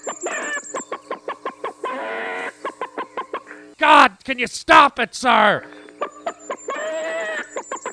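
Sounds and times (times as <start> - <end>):
person imitating chicken clucking: 1.6 - 4.0, 5.0 - 7.9
speech: 3.8 - 5.8.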